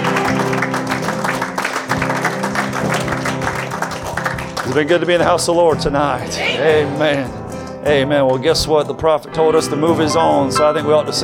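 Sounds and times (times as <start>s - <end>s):
large crowd clapping: 0.0s - 6.3s
speech: 4.7s - 11.2s
sustained musical tones humming: 9.3s - 11.2s.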